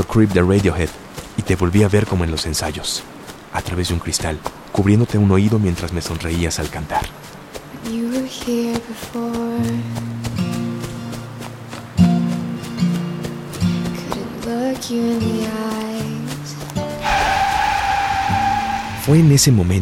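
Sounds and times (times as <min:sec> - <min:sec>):
traffic noise: 0:00.0 - 0:15.8, 0:16.8 - 0:19.8
speech: 0:00.1 - 0:10.2, 0:14.8 - 0:16.1, 0:19.1 - 0:19.8
car with fogged windows braking hard with tires skidding: 0:16.9 - 0:19.8
car engine: 0:17.0 - 0:19.8.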